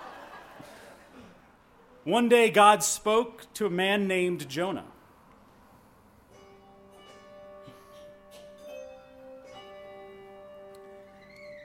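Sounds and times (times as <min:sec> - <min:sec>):
laughter: 0:00.0 - 0:01.5
speech: 0:02.0 - 0:04.9
handbells playing a gentle overlapping melody: 0:06.3 - 0:11.6.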